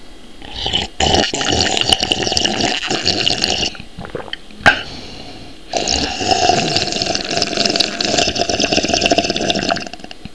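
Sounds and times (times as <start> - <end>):
slurping: 0.4 - 4.4, 5.7 - 10.2.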